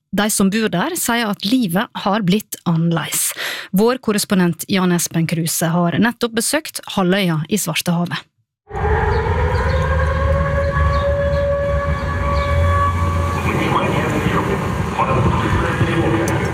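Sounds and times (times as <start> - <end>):
speech: 0.1 - 8.9
drone air-raid siren wailing in Sevastopol Crimea: 8.7 - 15.8.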